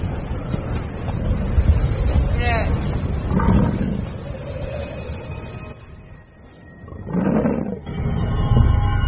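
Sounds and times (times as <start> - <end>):
howling blizzard wind: 0.0 - 9.0.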